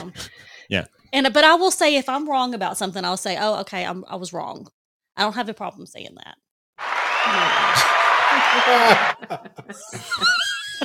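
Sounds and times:
speech: 0.7s - 6.4s, 7.2s - 10.8s
applause: 6.8s - 9.3s
laughter: 8.4s - 10.8s.

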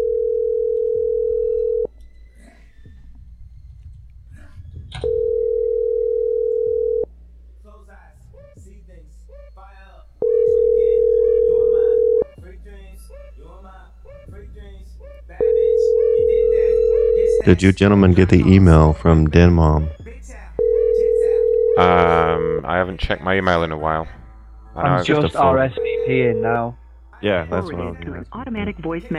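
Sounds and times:
ringback tone of an outgoing call to a cell phone: 0.0s - 1.9s, 5.0s - 7.1s, 10.2s - 12.3s, 15.4s - 17.7s, 20.6s - 22.4s, 24.9s - 26.6s
speech: 17.5s - 20.0s, 22.7s - 24.2s, 24.8s - 29.1s.

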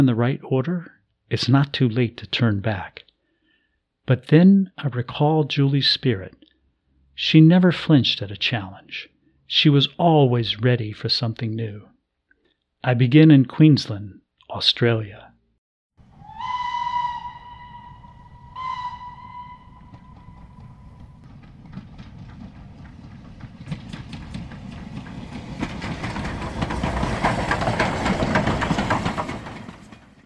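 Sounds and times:
speech: 0.0s - 3.1s, 4.1s - 6.4s, 7.2s - 11.9s, 12.8s - 15.3s
passenger train horn: 16.2s - 21.2s
passenger train wheels clattering over rail joints: 19.0s - 30.2s.

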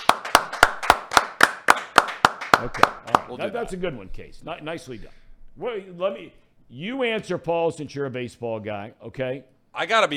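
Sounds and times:
crisp applause: 0.0s - 3.3s
speech: 2.6s - 10.1s.

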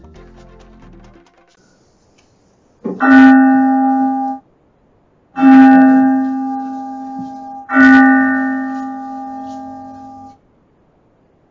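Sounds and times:
bell ringing: 3.0s - 4.4s, 5.4s - 10.4s.

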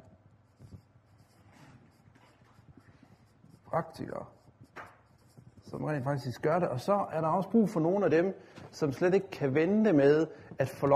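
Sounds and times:
marker writing on a board: 0.1s - 6.3s
speech: 3.7s - 4.4s, 5.7s - 10.9s.

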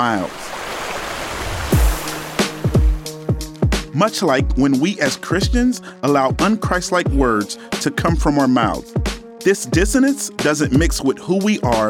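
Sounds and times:
speech: 0.0s - 0.6s, 4.0s - 11.8s
rushing river water: 0.0s - 3.2s.

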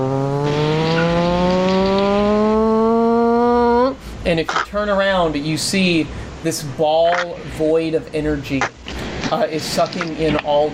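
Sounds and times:
engine revving with a loud mechanical whine: 0.0s - 4.0s
speech: 4.3s - 10.7s.

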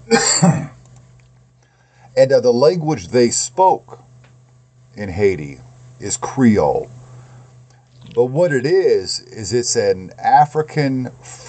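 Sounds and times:
speech: 0.1s - 0.7s, 2.2s - 4.1s, 5.0s - 7.0s, 8.1s - 11.4s
harsh raspy cough: 0.1s - 0.8s.

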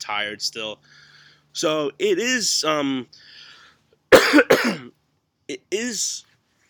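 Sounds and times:
speech: 0.1s - 3.5s, 4.3s - 6.3s
person coughing up phlegm while recovering from a flu-like illness: 4.1s - 5.0s.

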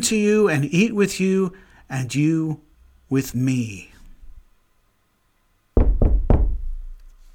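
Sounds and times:
speech: 0.0s - 3.9s
firm knocking on a wooden door: 5.8s - 6.8s.

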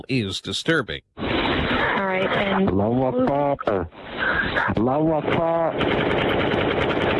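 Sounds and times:
person speaking loudly over a muffled phone-quality line in a 911 call: 0.0s - 1.0s, 2.0s - 5.8s
speech: 0.1s - 7.1s
machine-gun-style gunshot sound effects in a 911 call: 4.9s - 7.1s.

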